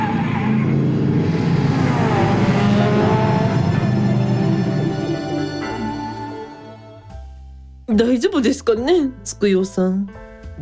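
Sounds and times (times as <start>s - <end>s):
modified RX-7 sports car engine revving and accelerating: 0.0s - 7.1s
speech: 8.2s - 10.6s.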